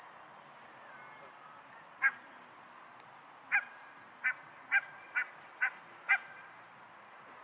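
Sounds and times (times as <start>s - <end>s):
Barnacle goose Branta leucopsis calling: 2.0s - 2.2s, 3.5s - 6.4s.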